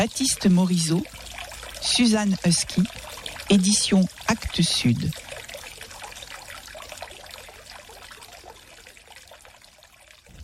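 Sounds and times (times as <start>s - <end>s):
speech: 0.0s - 5.3s
river water trickling with small splashes and gurgles: 0.0s - 10.4s.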